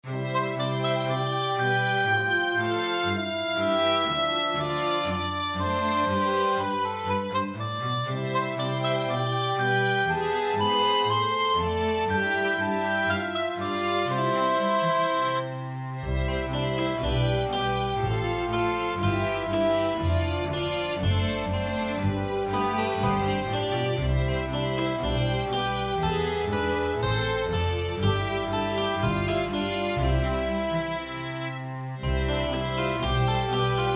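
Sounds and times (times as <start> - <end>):
oboe playing light 18th-century style classical tune: 0.1 - 33.9
harpsichord playing light 18th-century style classical tune: 16.2 - 33.9.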